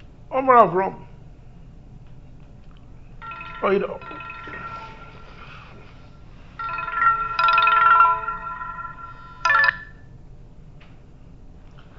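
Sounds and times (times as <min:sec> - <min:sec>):
low steady room hum: 0:00.0 - 0:11.9
speech: 0:00.4 - 0:01.1, 0:03.6 - 0:04.3
cell phone ringtone with a bright electronic melody: 0:03.2 - 0:10.0.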